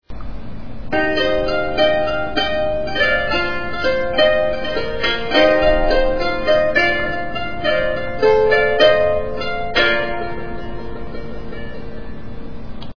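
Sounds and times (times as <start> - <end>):
African valiha music: 0.9 - 12.8.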